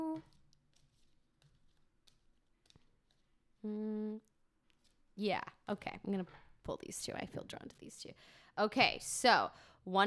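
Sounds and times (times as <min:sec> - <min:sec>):
person humming: 0:00.0 - 0:00.3, 0:03.6 - 0:04.3
oracle cards being shuffled: 0:00.2 - 0:03.5
speech: 0:03.6 - 0:04.0, 0:05.2 - 0:10.0.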